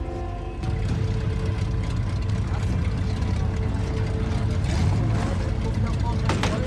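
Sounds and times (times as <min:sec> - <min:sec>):
car engine idling: 0:00.0 - 0:06.6.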